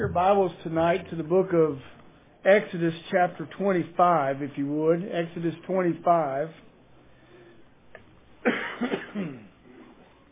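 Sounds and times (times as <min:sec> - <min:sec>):
speech: 0:00.0 - 0:06.7, 0:08.8 - 0:09.4
person coughing harshly in a raspy fit: 0:08.4 - 0:09.6.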